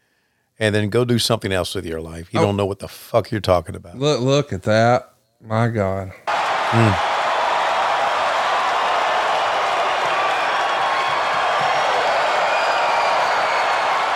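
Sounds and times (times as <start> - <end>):
speech: 0.6 - 7.1
large wrestling arena crowd roaring and cheering: 6.3 - 14.1.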